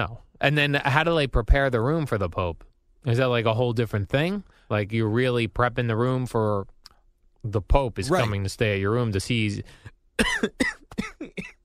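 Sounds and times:
speech: 0:00.0 - 0:06.7, 0:07.4 - 0:11.6
harsh wet coughing: 0:10.2 - 0:11.6.

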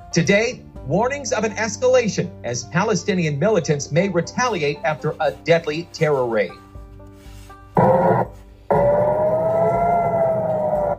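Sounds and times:
speech: 0:00.1 - 0:06.6
rocket warning siren wailing in a city: 0:07.8 - 0:10.9.

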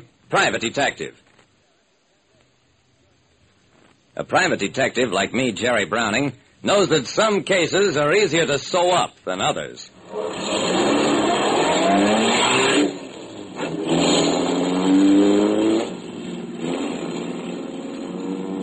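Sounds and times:
speech: 0:00.3 - 0:01.2, 0:04.2 - 0:10.5
car engine accelerating: 0:10.0 - 0:18.6.

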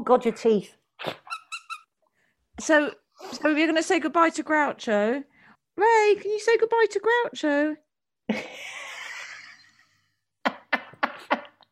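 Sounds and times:
speech: 0:00.1 - 0:01.2, 0:02.6 - 0:08.6
voice imitating a meerkat squeak: 0:01.0 - 0:02.0.

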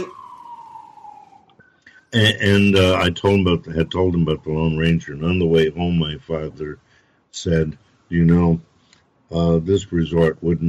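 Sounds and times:
brief higher tonal blips: 0:00.0 - 0:01.7
siren wailing: 0:00.0 - 0:06.3
speech: 0:02.1 - 0:06.8, 0:07.4 - 0:08.7, 0:09.3 - 0:10.6.

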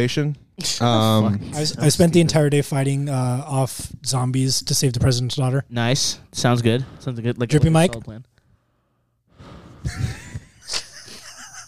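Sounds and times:
speech: 0:00.0 - 0:08.3
heavy gasping breathing into a microphone after running: 0:06.8 - 0:07.2, 0:08.4 - 0:10.4
laughter: 0:09.8 - 0:11.6.

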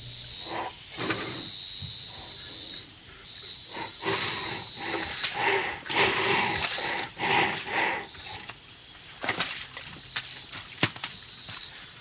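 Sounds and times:
northern white rhino bellowing and snorting: 0:00.0 - 0:08.5
insects chirring: 0:00.0 - 0:12.0.

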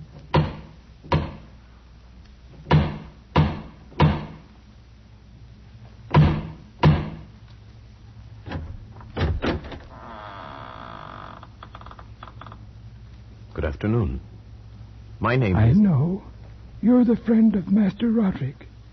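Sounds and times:
heavy knocking on a massive wooden door: 0:00.3 - 0:01.5, 0:02.6 - 0:04.4, 0:06.1 - 0:07.3
speech: 0:13.8 - 0:14.4, 0:15.2 - 0:18.6.

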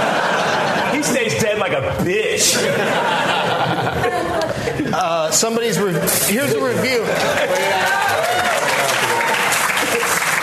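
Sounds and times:
laughter: 0:00.0 - 0:10.4
speech: 0:01.0 - 0:08.7
audience applause: 0:06.6 - 0:10.4
voices calling out and cheering: 0:07.1 - 0:10.4.

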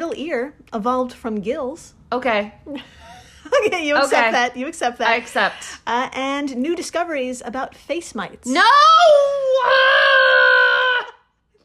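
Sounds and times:
speech: 0:00.1 - 0:10.6
person screaming in disgust: 0:08.7 - 0:11.2.

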